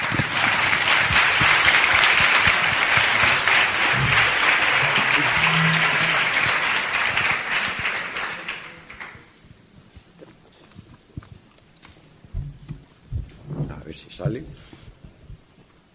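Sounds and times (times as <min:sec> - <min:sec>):
audience applauding to welcome a speaker: 0:00.0 - 0:09.4.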